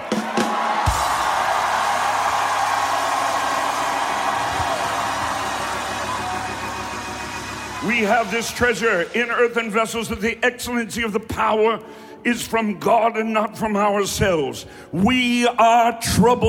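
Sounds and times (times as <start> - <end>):
large crowd roaring and shouting: 0.0 - 9.6
speech: 7.9 - 16.4.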